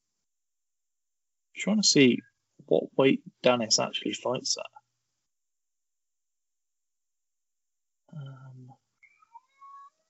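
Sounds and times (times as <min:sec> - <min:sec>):
speech: 0:01.6 - 0:04.8
cat meowing outside a door: 0:09.1 - 0:09.9.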